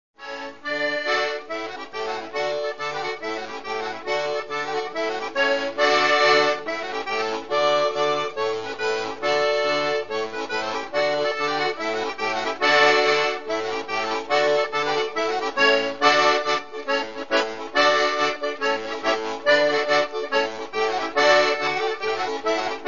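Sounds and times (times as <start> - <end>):
organetto playing: 0.2 - 22.8.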